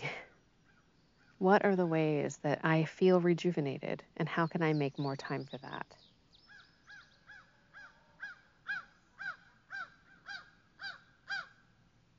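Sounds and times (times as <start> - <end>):
speech: 1.4 - 6.0
crow cawing: 6.5 - 11.6.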